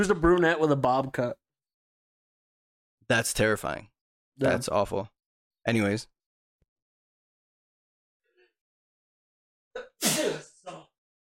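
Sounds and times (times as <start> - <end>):
speech: 0.0 - 1.4, 3.1 - 6.1
person sneezing: 9.8 - 10.6
sniff: 10.0 - 10.4.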